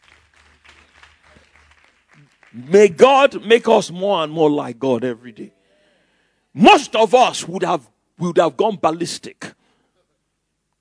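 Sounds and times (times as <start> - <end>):
church congregation clapping: 0.0 - 4.3
speech: 2.5 - 5.6, 6.6 - 9.4.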